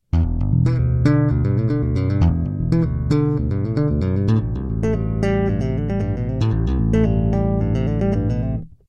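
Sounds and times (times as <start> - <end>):
electric bass advanced tapping riff: 0.0 - 8.8.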